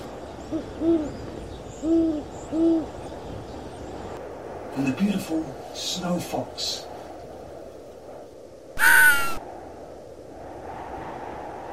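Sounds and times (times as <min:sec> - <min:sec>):
faint steady hiss: 0:00.0 - 0:11.7
snowy owl hooting in minus 38 degree cold: 0:00.4 - 0:03.0, 0:08.8 - 0:09.4
speech: 0:00.5 - 0:03.0, 0:04.8 - 0:06.9.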